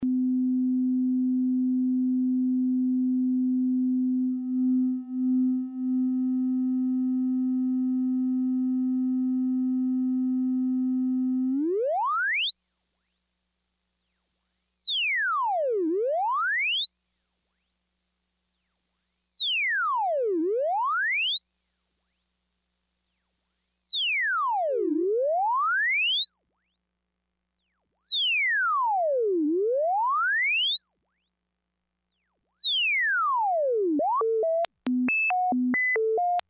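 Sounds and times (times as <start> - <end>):
sine oscillator tone through a frequency shifter: 0.0 - 36.4.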